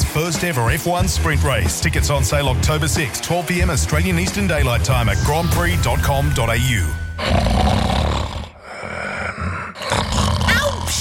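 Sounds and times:
speech: 0.2s - 7.7s
loud rasping human snoring: 7.2s - 10.9s.

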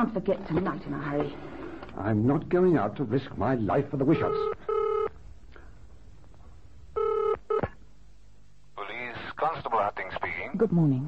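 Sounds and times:
speech: 0.0s - 4.7s, 10.0s - 11.0s
telephone being dialed with short buzzy electronic tones: 4.2s - 5.1s, 7.0s - 7.7s.

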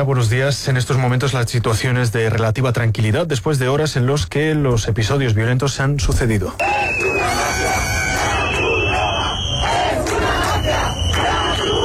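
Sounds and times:
speech: 0.0s - 7.8s
angry crowd chanting slogans in Spanish: 6.6s - 11.8s
constant roar of voices: 6.6s - 11.8s
people yelling: 6.6s - 11.8s.

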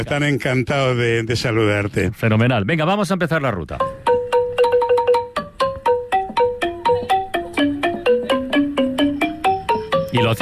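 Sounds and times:
speech: 0.0s - 4.1s
traditional Laotian folk xylophone playing a quick run of bright struck notes: 3.8s - 10.4s.

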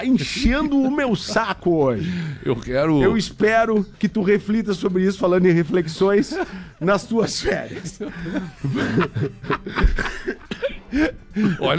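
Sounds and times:
speech: 0.0s - 10.3s, 10.9s - 11.7s
old man chuckling and snickering: 7.4s - 11.7s
old man coughing harshly: 7.4s - 11.7s.

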